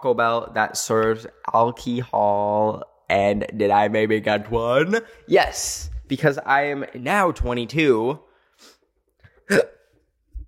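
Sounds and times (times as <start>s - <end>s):
speech: 0.0s - 8.7s, 9.5s - 9.7s
person with anxiety hiccups hiccuping: 9.4s - 9.9s.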